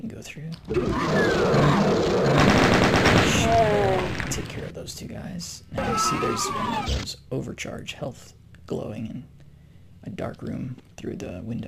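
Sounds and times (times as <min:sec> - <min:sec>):
speech: 0:00.0 - 0:02.7, 0:03.4 - 0:09.4, 0:10.0 - 0:11.6
rapid gunfire in a video game: 0:00.7 - 0:04.7.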